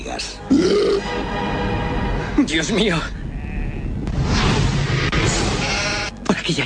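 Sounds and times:
speech: 0:00.0 - 0:01.5, 0:02.4 - 0:03.3
loud steady broadband noise and low rumble: 0:01.6 - 0:06.6
sheep bleating from a rebelling flock: 0:03.3 - 0:04.0.

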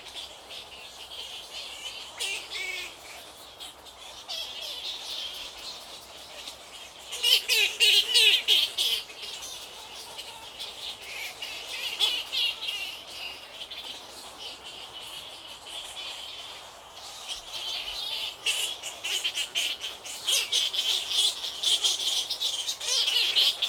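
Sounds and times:
many bats chattering on an island in Lake Kivu: 0:01.6 - 0:23.6.

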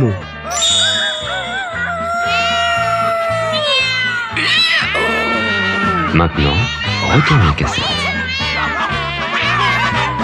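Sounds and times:
cat meowing and yowling: 0:00.5 - 0:10.2
speech: 0:06.2 - 0:08.0.

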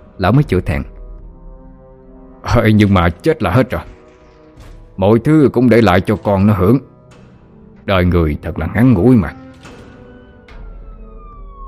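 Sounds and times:
speech: 0:00.2 - 0:00.9, 0:02.6 - 0:04.0, 0:05.0 - 0:06.9, 0:07.9 - 0:09.4
police car siren wailing as it arrives: 0:10.8 - 0:11.6.

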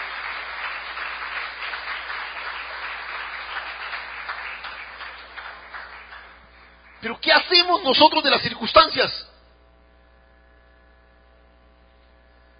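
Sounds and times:
congregation applauding during a church worship service: 0:00.0 - 0:09.0
speech: 0:07.0 - 0:09.3.

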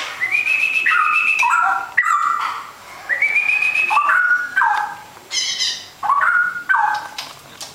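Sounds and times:
Oriental magpie-robin song: 0:00.2 - 0:07.1.

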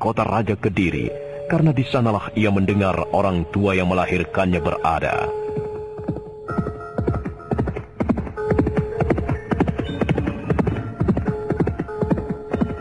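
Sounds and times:
speech: 0:00.0 - 0:05.4
horse hooves galloping as a rider spurs the horse on: 0:04.6 - 0:12.7.

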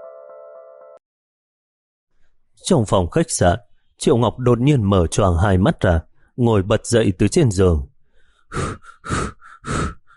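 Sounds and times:
speech: 0:02.6 - 0:07.9, 0:08.5 - 0:09.9
man panting heavily after waking in fright: 0:08.1 - 0:10.1.

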